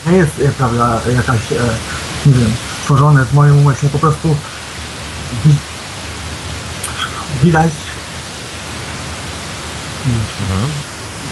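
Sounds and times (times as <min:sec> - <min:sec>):
speech: 0:00.0 - 0:04.5, 0:05.3 - 0:05.7, 0:07.4 - 0:07.8, 0:10.0 - 0:10.9
loud microphone hiss on a caller's line: 0:00.0 - 0:11.3
faint voice: 0:06.8 - 0:08.0, 0:10.1 - 0:11.3.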